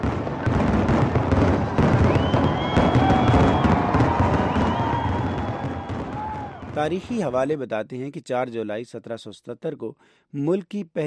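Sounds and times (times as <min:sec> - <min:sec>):
fireworks crackling and popping at a grand nighttime display: 0:00.0 - 0:07.4
speech: 0:06.8 - 0:11.0.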